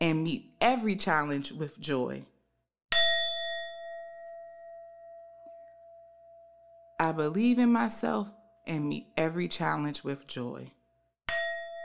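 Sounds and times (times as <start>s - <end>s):
speech: 0.0s - 2.3s, 7.0s - 10.8s
singing bowl struck and ringing: 2.9s - 7.0s, 11.3s - 11.8s.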